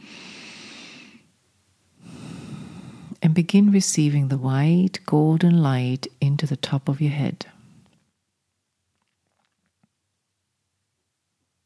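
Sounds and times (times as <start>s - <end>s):
person exhaling strongly: 0.0s - 1.3s, 2.0s - 3.2s
person inhaling deeply during a guided meditation: 0.0s - 1.3s, 2.0s - 3.2s
speech: 3.4s - 7.5s.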